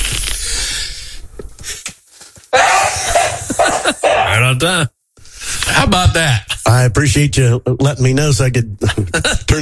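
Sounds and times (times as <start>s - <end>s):
loud human sneeze: 2.5s - 4.4s
laughter: 2.6s - 4.4s, 8.8s - 9.6s
speech: 4.4s - 5.0s, 5.7s - 9.6s.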